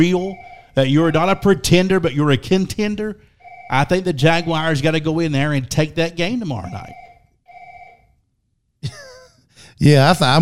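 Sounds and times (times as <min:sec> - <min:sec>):
telephone ringing: 0:00.0 - 0:01.1, 0:03.4 - 0:04.9, 0:06.6 - 0:08.1
speech: 0:00.0 - 0:07.0, 0:08.8 - 0:09.0, 0:09.8 - 0:10.4.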